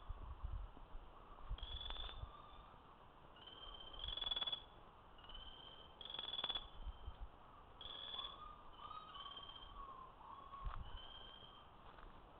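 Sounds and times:
Buff-spotted flameback Chrysocolaptes lucidus giving high trilled calls: 1.5s - 7.2s, 7.8s - 11.7s.

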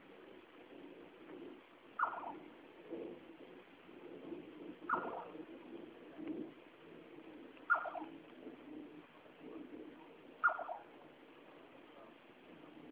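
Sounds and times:
steady low background noise: 0.0s - 12.9s
Jerdon's nightjar Caprimulgus Atripennis tremulous descending calls: 2.0s - 2.4s, 4.9s - 5.3s, 7.7s - 8.2s, 10.4s - 10.9s.

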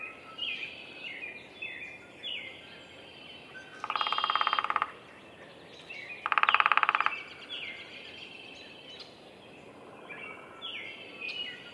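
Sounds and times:
bird calls and chirps: 0.0s - 11.7s
downy woodpecker Picoides pubescens drumming at a bird sanctuary in Minnesota: 3.8s - 5.0s, 6.2s - 7.4s.

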